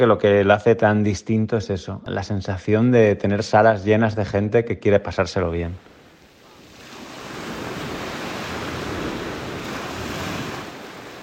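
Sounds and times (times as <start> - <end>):
speech: 0.0 - 5.9
sea waves breaking on a beach: 5.8 - 11.2
wind noise: 6.5 - 11.2.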